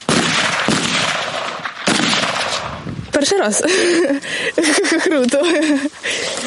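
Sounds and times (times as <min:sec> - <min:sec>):
rifle gunshots at civilian shooting practice: 0:00.0 - 0:02.8
speech: 0:03.2 - 0:06.4
laughter: 0:03.5 - 0:06.4.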